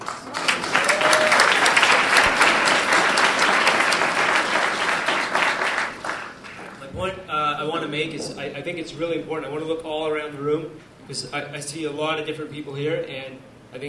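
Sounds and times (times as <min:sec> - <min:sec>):
audience applause at a gathering: 0:00.0 - 0:06.8
speech: 0:07.9 - 0:13.8.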